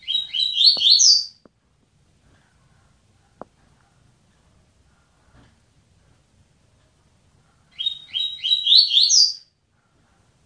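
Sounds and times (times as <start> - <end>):
double-collared seedeater singing a phrase of sweet slurred notes: 0.0 - 1.4, 7.7 - 9.5.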